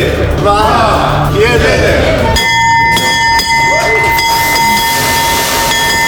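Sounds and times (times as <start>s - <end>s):
broadband noise in a large room: 1.1s - 6.0s
stock exchange opening bell ringing: 2.3s - 6.0s.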